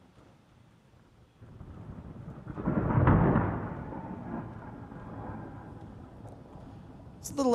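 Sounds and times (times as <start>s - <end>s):
rolling thunder: 1.4s - 7.2s
speech: 7.3s - 7.5s.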